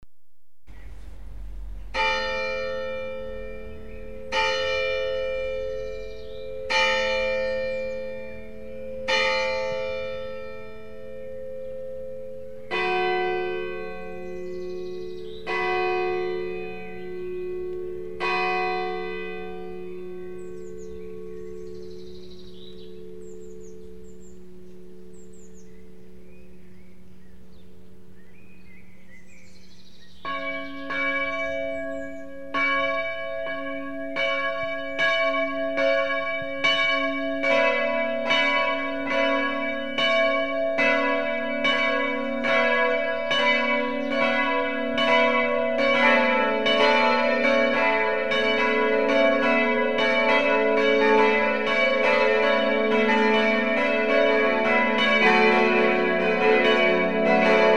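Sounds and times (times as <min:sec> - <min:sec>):
church bells ringing: 0:00.9 - 0:57.7.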